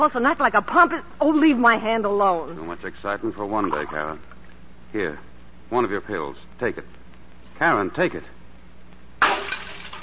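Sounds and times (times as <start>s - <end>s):
speech: 0.0s - 4.3s, 4.9s - 7.0s, 7.6s - 8.4s
glass being smashed: 9.2s - 10.0s.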